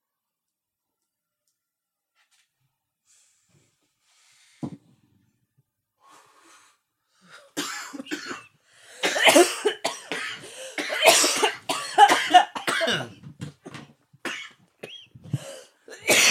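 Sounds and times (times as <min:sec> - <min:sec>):
prolonged harsh coughing fit: 0:07.5 - 0:16.2.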